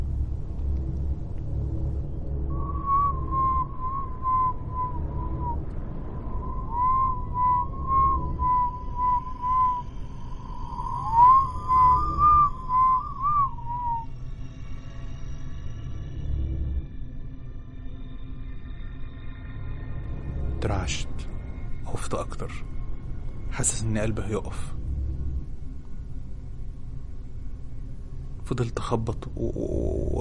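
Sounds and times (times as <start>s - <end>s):
steady low rumble: 0.0s - 18.4s, 19.6s - 30.1s
eerie whistling in a dark haunted house: 1.9s - 30.1s
speech: 20.9s - 21.2s, 22.1s - 22.7s, 23.6s - 24.8s, 28.5s - 30.1s.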